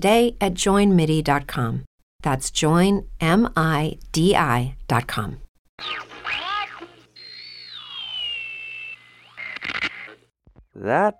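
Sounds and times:
speech: 0.0 - 6.5, 10.8 - 11.1
radio static: 5.8 - 8.4, 9.0 - 10.3
short crackling bursts of noise: 5.8 - 10.3
warbling electronic whines: 7.1 - 10.3
long slowly falling whistle-like tone: 7.2 - 9.7.

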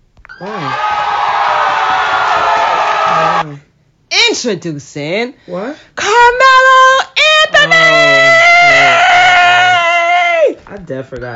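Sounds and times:
person whooping: 0.3 - 3.4, 8.0 - 10.6
speech: 0.4 - 0.9, 4.2 - 6.7, 10.8 - 11.3
crowd cheering and applause: 0.4 - 3.4.

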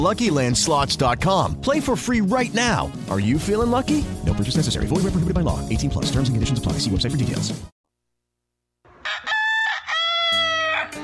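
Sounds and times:
speech: 0.0 - 7.7
rooster crowing: 8.9 - 11.0.

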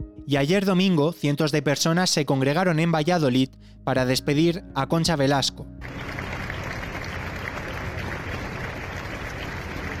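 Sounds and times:
speech: 0.3 - 5.7
large crowd applauding at a cathedral door in Valladolid: 5.8 - 9.9.

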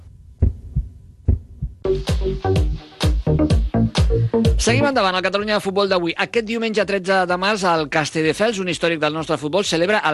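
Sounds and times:
heartbeat sound effect thumps: 0.0 - 4.8
driving music with sharp percussive hits: 1.8 - 4.8
speech: 4.4 - 10.1.

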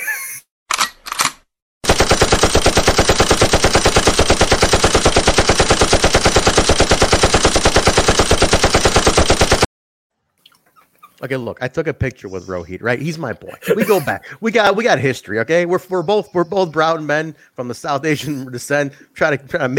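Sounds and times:
machine gun fire: 1.8 - 9.7
speech: 11.2 - 19.7
laughter: 13.0 - 15.1.

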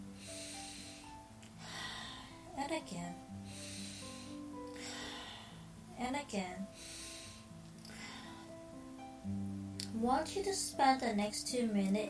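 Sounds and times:
deep breath in during a guided prayer breathing exercise: 0.0 - 2.6, 3.4 - 5.7, 6.7 - 8.7
speech: 2.7 - 3.6, 6.0 - 6.9, 9.3 - 12.0.

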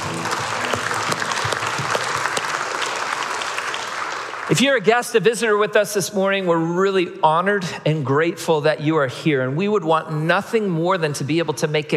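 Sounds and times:
audience clapping in sustained applause: 0.0 - 4.8
speech: 4.5 - 11.9.

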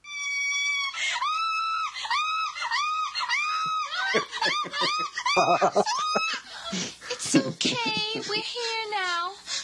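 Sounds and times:
woman screaming: 0.1 - 6.4
laughter: 2.6 - 8.6
speech: 5.4 - 9.4.

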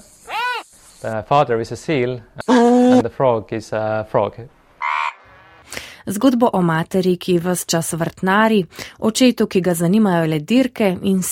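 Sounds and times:
speech: 1.0 - 4.6, 6.0 - 11.3
frogs croaking: 4.8 - 5.6.

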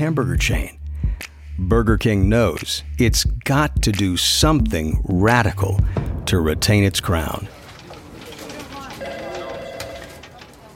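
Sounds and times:
speech: 0.0 - 0.8, 1.6 - 7.6
voices murmuring: 7.4 - 10.7
cell phone ringing with warbling chirps: 9.0 - 10.3.

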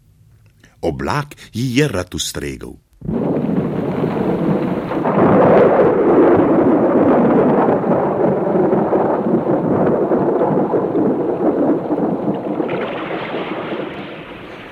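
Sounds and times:
speech: 0.8 - 2.8
long heavy roll of thunder: 3.0 - 14.7.

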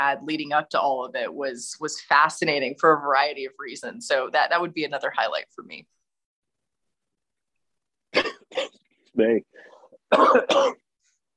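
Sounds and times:
speech: 0.0 - 6.0, 8.1 - 10.8
harsh raspy coughs: 8.1 - 8.8, 9.9 - 10.9.

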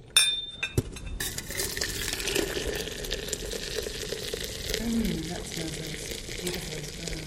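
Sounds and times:
sharp china clinks: 0.1 - 1.4
boiling water poured into a teapot holding tea: 1.2 - 7.2.

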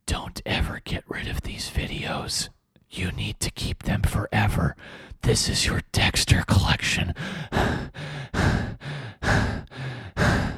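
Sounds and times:
speech: 0.3 - 8.6
voice imitating heavy breathing: 7.1 - 10.5.

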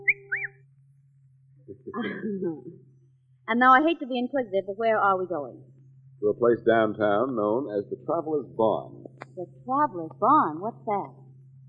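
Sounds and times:
two-note wolf whistle: 0.0 - 0.5
speech: 2.0 - 2.9, 3.5 - 11.2
laughter: 6.3 - 8.9.

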